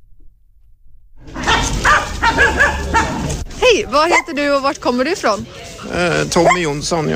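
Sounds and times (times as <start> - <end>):
busy outdoor murmur at the Nossebro market: 1.2 - 7.1
dog barking and yipping at the Nossebro market: 1.3 - 3.4, 4.0 - 4.4, 6.4 - 6.7
speech: 3.7 - 7.1.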